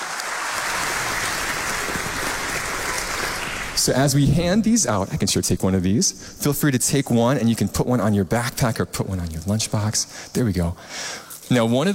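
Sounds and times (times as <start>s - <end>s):
audience clapping: 0.0s - 4.8s
speech: 3.9s - 11.9s.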